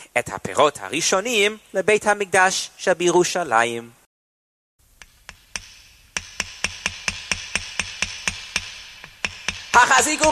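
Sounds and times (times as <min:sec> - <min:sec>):
speech: 0:00.1 - 0:04.0, 0:09.8 - 0:10.3
hammer driving nails into the wooden side walls of a sukkah: 0:05.0 - 0:09.8.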